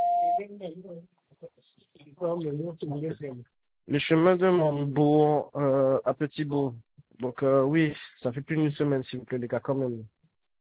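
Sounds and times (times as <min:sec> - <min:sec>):
answering machine beep: 0:00.0 - 0:00.4
speech: 0:00.4 - 0:10.2.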